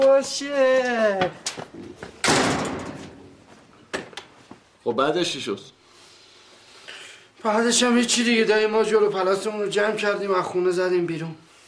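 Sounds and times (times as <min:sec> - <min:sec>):
speech: 0:00.0 - 0:02.1, 0:04.8 - 0:05.8, 0:07.4 - 0:11.4
door slamming shut: 0:02.2 - 0:03.4.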